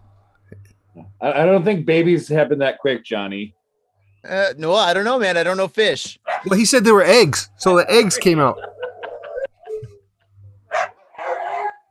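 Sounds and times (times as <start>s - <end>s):
faint low hum: 0.0s - 11.8s
speech: 1.2s - 3.6s, 4.2s - 8.8s
dog barking and yipping: 6.2s - 6.5s, 10.7s - 11.8s
laughter: 8.0s - 10.1s.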